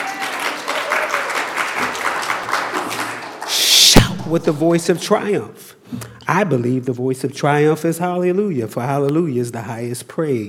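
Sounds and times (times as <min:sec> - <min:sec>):
audience clapping hands in a steady rhythmic beat: 0:00.0 - 0:04.8
speech: 0:04.3 - 0:10.4.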